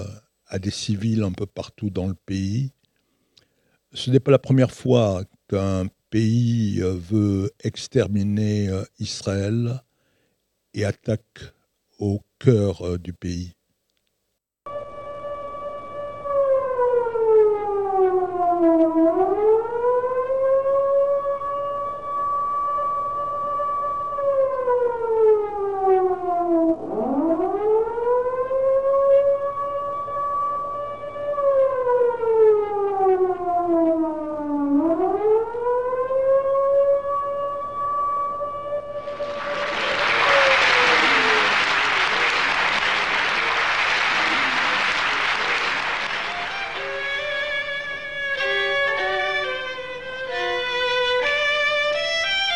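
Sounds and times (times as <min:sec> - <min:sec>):
speech: 0:00.5 - 0:02.8, 0:03.9 - 0:09.9, 0:10.8 - 0:13.6
civil defense air raid siren wailing: 0:14.7 - 0:52.5
burst of broadband noise: 0:39.0 - 0:47.5.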